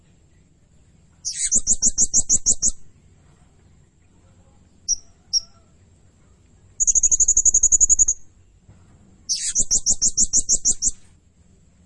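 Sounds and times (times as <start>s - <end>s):
blue-crowned hanging parrot trilling and chipping: 1.2s - 2.8s, 4.8s - 5.6s, 6.8s - 8.2s, 9.3s - 11.0s.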